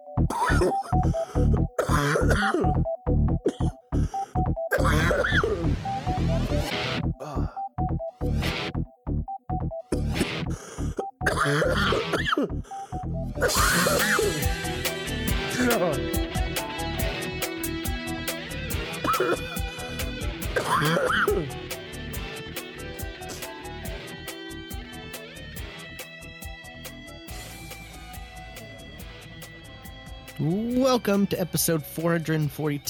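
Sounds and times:
music: 0.0 - 32.8
person coughing: 0.3 - 2.8, 3.4 - 4.1, 4.7 - 5.7, 9.9 - 12.7, 13.4 - 14.7, 15.5 - 16.2, 19.0 - 19.8, 20.5 - 21.6
throat clearing: 0.3 - 2.8, 3.4 - 5.7, 9.9 - 12.7, 13.4 - 14.4, 15.5 - 16.0, 19.0 - 19.6, 20.6 - 21.5
speech: 0.3 - 4.2, 11.4 - 14.9, 15.6 - 16.2, 30.4 - 32.8.

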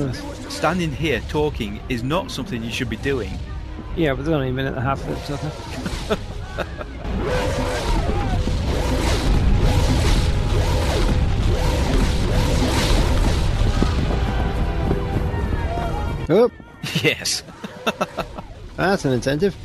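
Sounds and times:
crashes: 0.0 - 16.2
orbital bombardment explosion sound effect with rumbling blasts: 0.0 - 16.3
speech: 0.1 - 6.8, 16.3 - 19.6
whooshes: 4.9 - 15.3
laughter: 5.6 - 7.6, 16.8 - 18.7.

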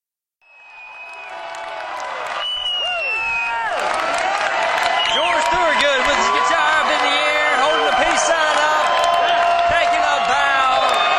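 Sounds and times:
whistles: 0.4 - 1.4, 2.2 - 3.7, 4.9 - 5.6
applause: 0.4 - 11.1
large concert crowd roaring and cheering for an encore: 0.4 - 11.1
shouted voices: 2.8 - 11.1.

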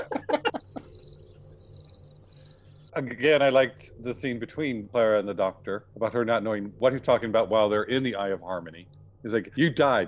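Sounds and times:
laughter: 0.0 - 0.9
crickets chirping: 0.3 - 3.6
speech: 3.0 - 10.0.

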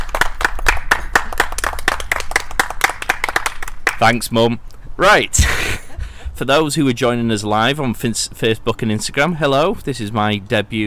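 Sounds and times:
small crowd clapping at an inn: 0.0 - 4.2
speech: 4.0 - 5.6, 6.4 - 10.8.

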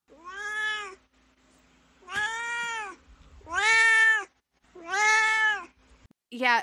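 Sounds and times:
pet cat meowing: 0.1 - 1.0, 2.0 - 5.7
speech: 6.4 - 6.6.

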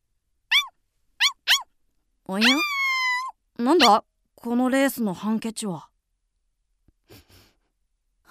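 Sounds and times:
small dog yipping: 0.5 - 1.7, 2.4 - 4.0
speech: 2.3 - 2.7, 3.6 - 5.9.

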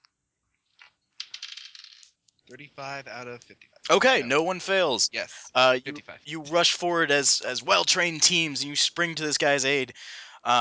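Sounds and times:
dice clattering across a surface during a tabletop role-playing game: 0.8 - 2.2
speech: 2.5 - 10.5.

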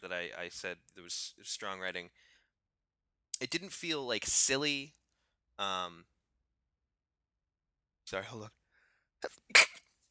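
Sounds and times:
speech: 0.1 - 2.3, 3.4 - 5.0, 5.6 - 6.1, 8.1 - 8.6, 9.2 - 9.8
sneeze: 9.5 - 10.0.

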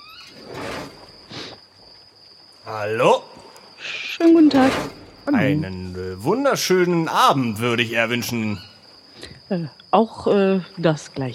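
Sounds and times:
small low servants' entrance door swinging open at night: 0.0 - 1.2, 4.3 - 6.4
door scraping: 0.0 - 1.5, 4.4 - 6.4
speech: 2.6 - 3.3, 4.2 - 8.7, 9.5 - 11.3.

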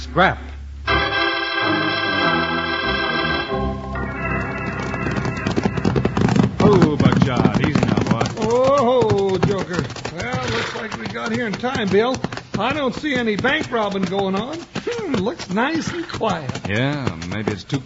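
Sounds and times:
speech: 0.0 - 0.5, 6.7 - 17.8
sustained musical chord: 0.8 - 6.6
lathered horses walking at the edge of a dusty cow town, hooves clip-clopping: 2.1 - 17.8.

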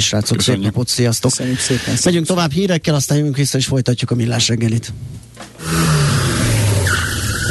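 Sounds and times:
speech: 0.0 - 6.2
car tires squealing as the car fishtails: 6.1 - 7.5.

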